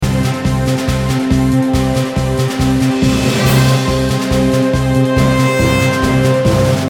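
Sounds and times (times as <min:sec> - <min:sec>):
short RPG background music: 0:00.0 - 0:06.8.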